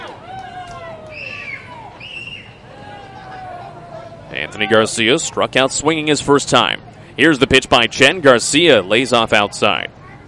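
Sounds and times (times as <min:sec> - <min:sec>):
large stadium crowd cheering doing the wave: 0:00.0 - 0:05.0
dense babble of fans: 0:00.0 - 0:10.2
speech: 0:04.5 - 0:10.0.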